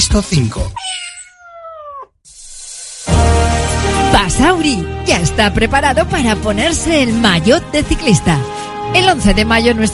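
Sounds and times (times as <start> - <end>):
speech: 0.1 - 0.8, 4.2 - 9.9
cat meowing: 0.8 - 2.2.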